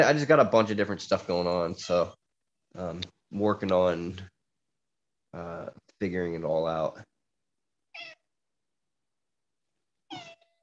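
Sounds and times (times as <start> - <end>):
speech: 0.0 - 4.3, 5.3 - 7.1
old cat meowing: 7.9 - 8.3, 10.1 - 10.6.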